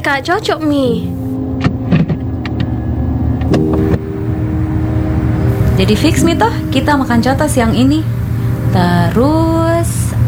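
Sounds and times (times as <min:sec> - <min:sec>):
red ride-hailing car engine idling: 0:00.0 - 0:10.2
speech: 0:00.1 - 0:01.2, 0:05.8 - 0:10.2
sharp clicks and knocks: 0:01.6 - 0:02.8.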